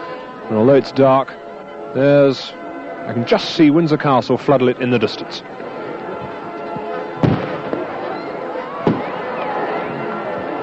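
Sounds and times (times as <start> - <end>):
speech: 0.5 - 1.4, 2.0 - 5.6
fireworks rockets bursting in the night sky: 7.2 - 7.8.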